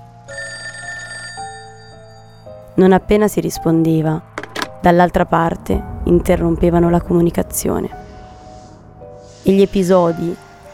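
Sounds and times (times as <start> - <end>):
home telephone ringing with a trilling bell tone: 0.3 - 1.9
speech: 2.8 - 8.0, 9.4 - 10.4.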